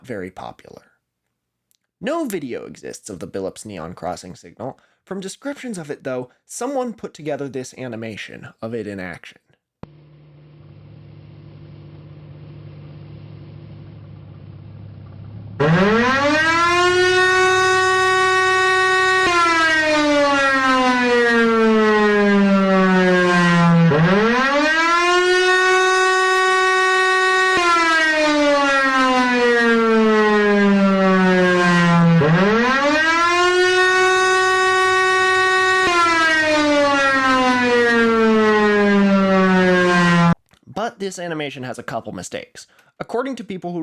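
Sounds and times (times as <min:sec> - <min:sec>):
speech: 0:00.0 - 0:00.9, 0:02.0 - 0:10.0, 0:41.3 - 0:43.8
air raid siren wailing up and down: 0:09.9 - 0:14.2, 0:15.5 - 0:40.4.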